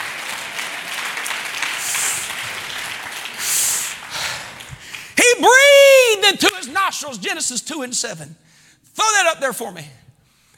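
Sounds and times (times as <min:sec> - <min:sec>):
audience applause: 0:00.0 - 0:05.4
speech: 0:05.4 - 0:05.6, 0:06.3 - 0:10.0.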